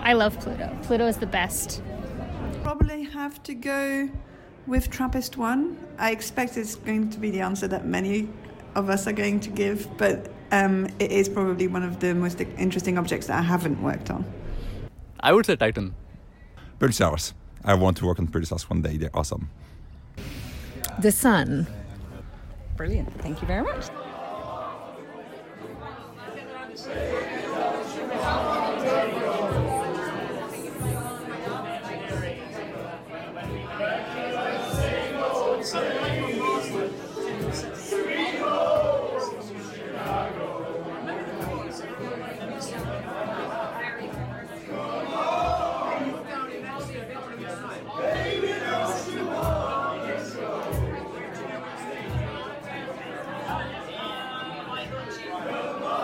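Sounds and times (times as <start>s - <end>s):
speech: 0.1s - 14.4s, 15.2s - 16.0s, 16.8s - 20.3s, 21.0s - 21.8s, 22.8s - 24.0s
large group of people singing in an echoing space: 23.8s - 56.0s.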